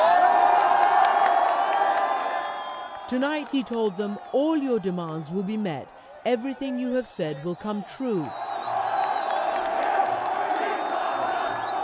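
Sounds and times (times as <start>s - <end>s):
large crowd cheering and roaring: 0.0s - 11.8s
whistles piercing through crowd noise: 1.5s - 4.4s, 7.6s - 10.0s, 10.6s - 11.8s
speech: 3.1s - 8.4s.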